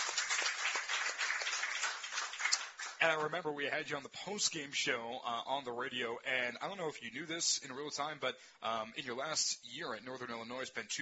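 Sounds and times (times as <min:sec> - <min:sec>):
audience applause: 0:00.0 - 0:03.0
speech: 0:03.0 - 0:11.0.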